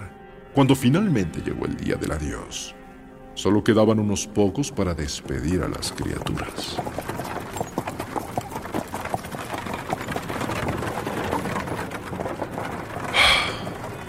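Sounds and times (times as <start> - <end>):
speech: 0.6 - 2.8, 3.4 - 7.4
horse hooves clip-clopping pulling a carriage: 3.7 - 14.0
horse-drawn carriage wheels rumbling: 4.5 - 14.0.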